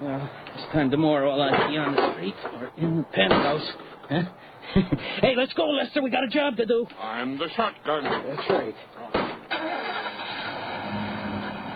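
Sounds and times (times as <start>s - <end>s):
speech: 0.2s - 9.9s
panel truck engine starting and driving off: 9.5s - 11.7s.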